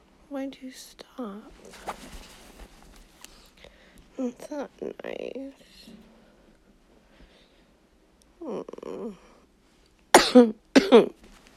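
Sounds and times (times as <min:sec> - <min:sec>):
speech: 0:00.3 - 0:02.5, 0:04.2 - 0:06.1, 0:08.4 - 0:09.3, 0:10.3 - 0:11.2
person coughing with a low throaty rasp: 0:10.2 - 0:11.2.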